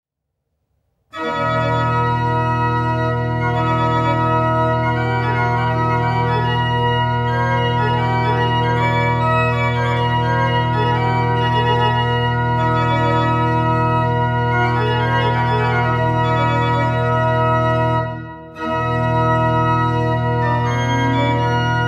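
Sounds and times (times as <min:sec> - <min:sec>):
prelude: 0:01.1 - 0:21.8.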